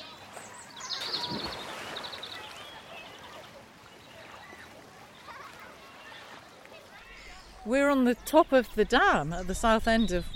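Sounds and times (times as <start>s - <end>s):
water splashing: 0.2s - 7.8s
speech: 7.7s - 10.3s.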